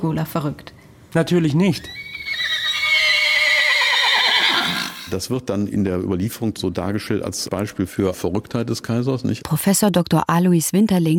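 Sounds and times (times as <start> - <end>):
speech: 0.0 - 2.0, 5.1 - 11.1
horse neighing in a long quavering whinny: 1.8 - 5.1.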